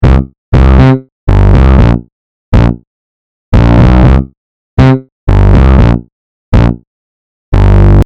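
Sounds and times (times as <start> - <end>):
bass F2 note: 0.0 - 2.8, 3.5 - 6.8, 7.5 - 8.0.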